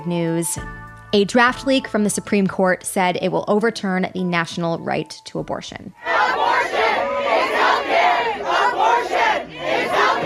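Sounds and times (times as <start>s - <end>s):
speech: 0.0s - 6.8s
crowd of protesters shouting and chanting on the steps of the Supreme Court in D.C.: 6.0s - 10.2s.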